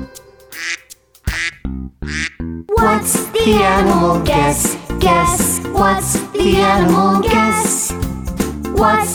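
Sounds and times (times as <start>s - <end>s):
duck quacking with raspy nasal quacks: 0.5s - 2.4s
speech: 3.0s - 7.8s, 8.8s - 9.1s.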